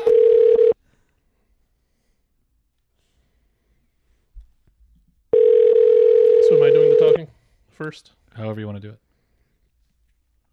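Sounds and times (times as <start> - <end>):
electronic ring tones from a phone line: 0.0 - 0.8, 5.4 - 7.2
speech: 7.8 - 9.1.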